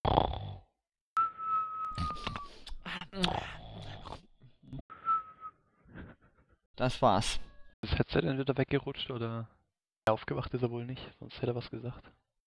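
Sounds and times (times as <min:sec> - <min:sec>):
man snoring while sleeping with a headset on: 0:00.0 - 0:00.7, 0:01.9 - 0:04.2
speech: 0:06.8 - 0:12.2.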